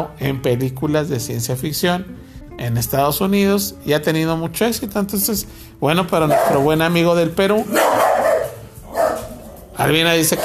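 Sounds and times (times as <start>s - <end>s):
speech: 0.0s - 8.0s, 9.8s - 10.4s
dog barking at a cat: 6.3s - 6.7s, 7.7s - 10.4s.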